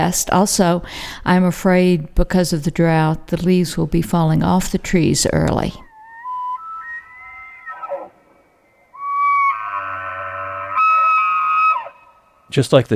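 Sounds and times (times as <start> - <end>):
speech: 0.0 - 5.9, 12.5 - 12.9
elk bugling: 5.0 - 12.5.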